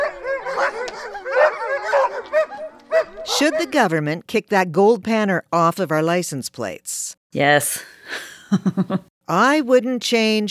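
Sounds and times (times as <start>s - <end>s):
chorus of husky dogs barking yipping and howling: 0.0s - 4.0s
speech: 3.4s - 10.4s.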